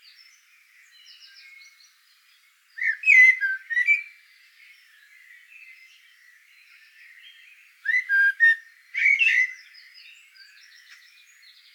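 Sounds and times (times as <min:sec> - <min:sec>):
Eurasian blackbird giving a mellow phrase of slurred whistled notes: 0:02.8 - 0:04.1, 0:07.9 - 0:09.6.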